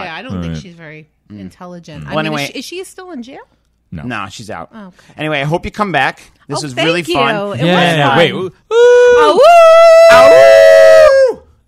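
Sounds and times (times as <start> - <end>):
speech: 0.2 - 10.8
person imitating a coyote howl: 8.7 - 11.4.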